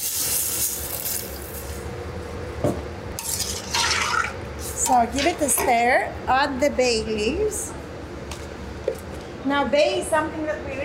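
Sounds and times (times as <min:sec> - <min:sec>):
a liter and a half of water pouring into a cooking pot: 0:03.2 - 0:04.4
speech: 0:04.9 - 0:07.8, 0:09.5 - 0:10.8.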